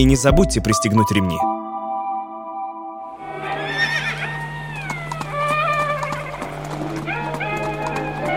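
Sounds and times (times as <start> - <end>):
speech: 0.0 - 1.5
horse hooves clip-clopping: 3.2 - 8.3.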